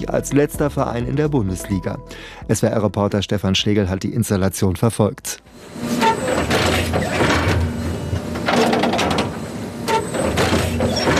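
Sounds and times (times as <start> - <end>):
speech: 0.0 - 6.0, 6.9 - 7.3
hybrid turf stitching machine humming: 5.5 - 11.1
hybrid turf stitching machine punching needles into a grass pitch: 5.5 - 11.1.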